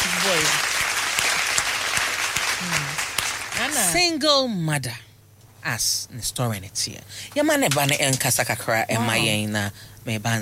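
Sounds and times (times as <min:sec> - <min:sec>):
applause: 0:00.0 - 0:04.0
speech: 0:00.3 - 0:00.7, 0:03.7 - 0:10.3.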